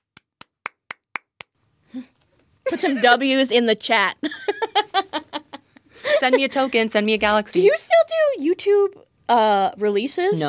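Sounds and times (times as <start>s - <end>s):
hand claps: 0.0s - 1.6s
speech: 1.9s - 4.6s, 6.2s - 10.4s.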